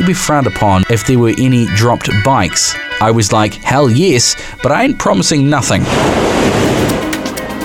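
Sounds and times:
speech: 0.0 - 7.0
ocean waves breaking on a sandy beach: 5.8 - 7.6.

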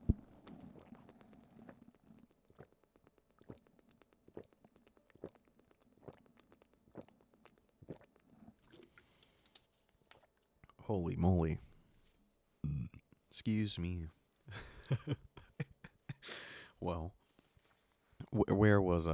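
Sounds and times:
person gulping water during a water break: 0.0 - 9.1, 10.0 - 10.8
speech: 10.9 - 11.7, 13.4 - 15.2, 16.8 - 17.2, 18.4 - 19.1.

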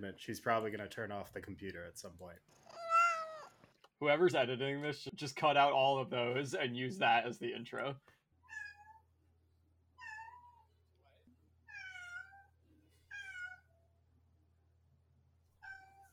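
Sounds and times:
speech: 0.0 - 2.8, 4.0 - 8.2
cat meowing: 2.6 - 3.6, 8.5 - 9.0, 10.0 - 10.7, 11.7 - 13.8, 15.6 - 16.1.

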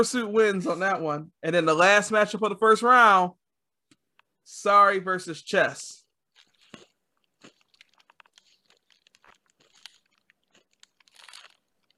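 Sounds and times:
speech: 0.0 - 3.4, 4.5 - 6.0
crinkling: 6.1 - 11.9
crunching of a snack being chewed: 6.2 - 11.9.

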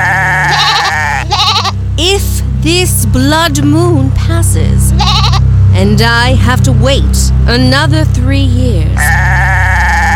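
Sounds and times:
goats bleating in a room: 0.0 - 1.8, 5.0 - 5.4, 9.0 - 10.1
speech: 2.6 - 5.2, 5.8 - 9.8.

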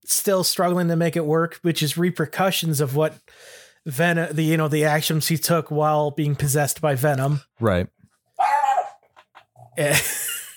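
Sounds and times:
speech: 0.1 - 8.0, 9.8 - 10.2
dog barking: 8.4 - 9.0
dog yipping faintly: 8.4 - 9.4.

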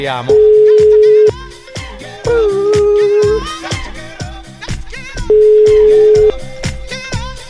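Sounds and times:
speech: 0.0 - 0.6
busy rhythmic music bed: 0.0 - 7.4
telephone ringing tone of an outgoing call placed on air: 0.3 - 1.4, 5.3 - 6.4.

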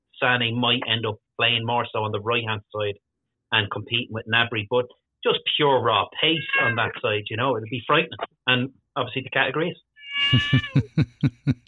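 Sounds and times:
speech: 0.2 - 11.6
cat meowing: 6.3 - 7.0, 10.0 - 10.9
laughter: 10.2 - 11.6.

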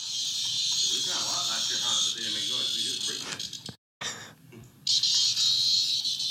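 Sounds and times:
cicada screaming from a played video: 0.0 - 3.5, 4.9 - 6.2
people talking: 0.9 - 3.4.

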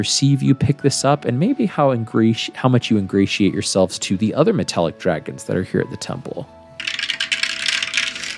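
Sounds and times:
speech: 0.0 - 6.6
percentile dice rolling across a tabletop: 6.8 - 8.3.

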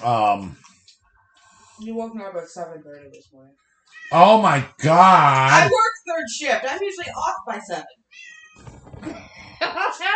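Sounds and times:
speech: 0.0 - 0.7, 1.8 - 10.1
cat meowing: 3.9 - 4.5, 8.1 - 8.7.

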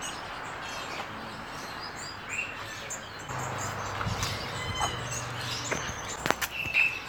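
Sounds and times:
small finches chirping and tweeting in a pet shop: 0.0 - 7.0
steady indoor hum: 3.3 - 6.6.

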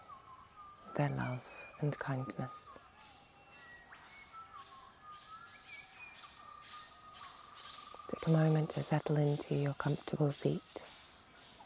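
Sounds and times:
birdsong whistled calls: 0.0 - 11.6
soft steady hiss: 0.0 - 11.6
speech: 1.0 - 2.9, 8.2 - 10.9.

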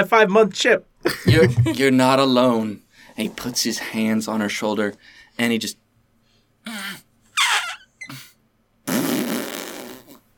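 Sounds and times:
speech: 0.0 - 5.8
raspberry fart noises blown with the mouth into a microphone: 7.4 - 10.3.

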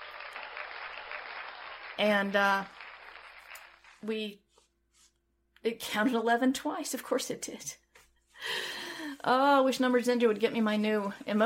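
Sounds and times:
crowd applause and cheering: 0.0 - 4.0
speech: 2.0 - 2.8, 4.0 - 4.4, 5.6 - 7.8, 8.4 - 11.4.

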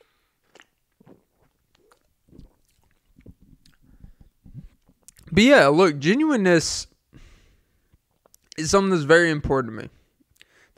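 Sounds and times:
person sipping a drink: 0.0 - 5.2
speech: 5.4 - 6.9, 8.6 - 10.0.

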